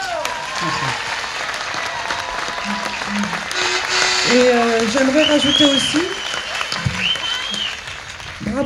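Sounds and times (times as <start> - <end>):
audience applause: 0.0 - 8.6
faint voices: 0.0 - 8.6
laughter: 0.0 - 8.6
speech: 0.6 - 1.1, 4.3 - 6.2
tonal sounds: 2.2 - 7.9.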